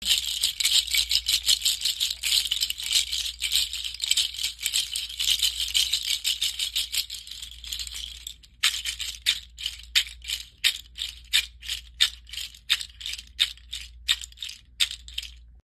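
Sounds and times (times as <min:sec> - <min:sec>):
seed rattle shaking: 0:00.0 - 0:15.6.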